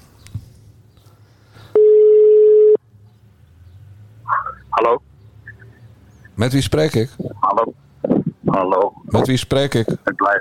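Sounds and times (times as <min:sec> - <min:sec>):
faint noise: 0:00.0 - 0:10.3
ringing tone of an outgoing telephone call: 0:01.8 - 0:02.8
speech: 0:04.8 - 0:05.1, 0:06.4 - 0:07.8, 0:08.5 - 0:10.3.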